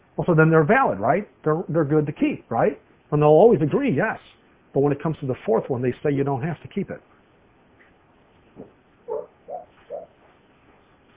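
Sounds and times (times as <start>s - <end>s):
speech: 0.2s - 7.1s
dog woofing softly in its sleep: 9.0s - 10.4s.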